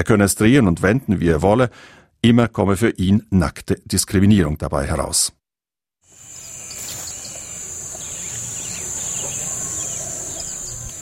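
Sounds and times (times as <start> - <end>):
speech: 0.0 - 5.4
crickets chirping: 6.1 - 10.9
birds twittering: 6.2 - 10.9.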